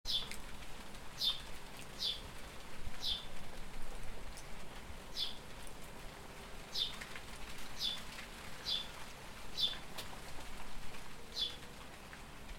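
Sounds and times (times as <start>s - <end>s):
low background noise: 0.1s - 12.5s
house sparrow Passer domesticus chirping: 1.2s - 1.4s, 2.0s - 2.2s, 3.0s - 3.3s, 5.1s - 5.4s, 7.8s - 8.0s, 8.6s - 8.9s, 9.6s - 9.8s.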